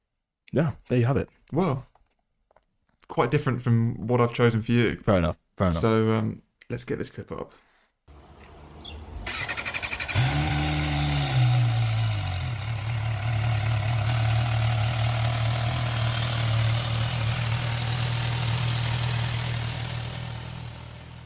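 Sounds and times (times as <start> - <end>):
speech: 0.5 - 1.9, 3.1 - 7.7
inline-four motorcycle engine with standard exhaust starting and idling: 8.1 - 21.2.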